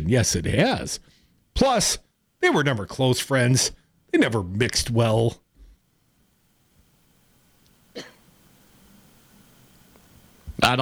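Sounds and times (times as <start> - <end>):
low hum: 0.0 - 10.8
speech: 0.1 - 5.4, 10.6 - 10.8
short sharp cough: 8.0 - 8.2.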